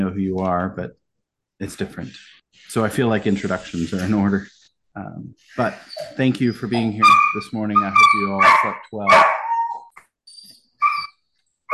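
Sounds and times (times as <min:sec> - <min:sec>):
speech: 0:00.0 - 0:01.0, 0:01.6 - 0:09.4
dog yipping and whining: 0:05.7 - 0:11.7.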